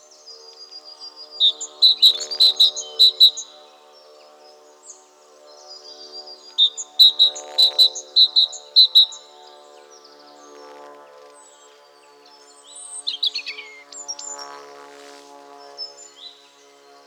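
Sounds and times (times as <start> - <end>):
great tit Parus major calling: 1.4 - 3.6, 6.4 - 9.3.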